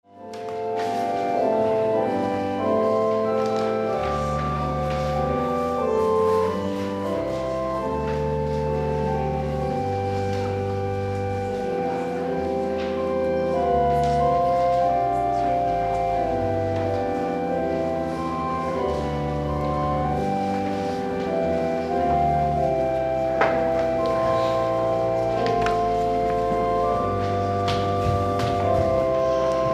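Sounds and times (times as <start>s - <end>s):
organ playing in a church: 0.0s - 29.7s.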